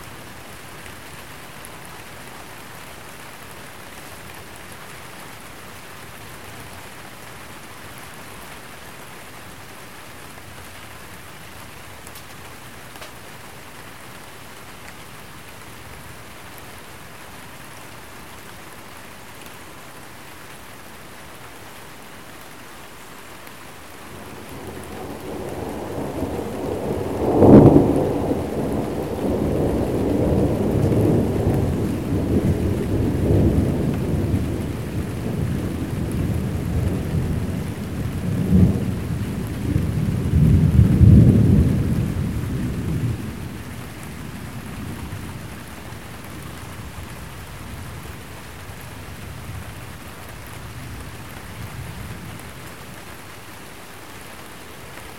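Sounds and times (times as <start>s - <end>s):
light rain: 0.0s - 55.1s
thunder: 24.3s - 43.6s.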